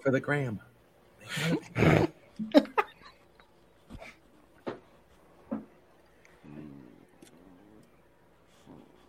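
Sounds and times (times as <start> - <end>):
speech: 0.0 - 0.7, 1.3 - 2.6
dog growling: 6.4 - 8.0.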